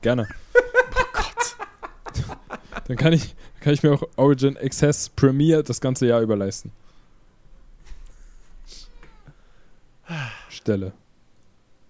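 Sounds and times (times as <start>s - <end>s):
speech: 0.0s - 0.4s, 2.9s - 6.9s, 10.6s - 11.0s
laughter: 0.6s - 3.3s
hungry male cat meowing: 8.7s - 9.4s.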